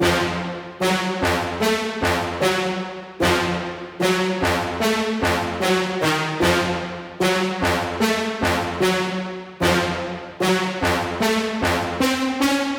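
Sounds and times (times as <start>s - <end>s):
brass melody in F minor: 0.0s - 12.7s.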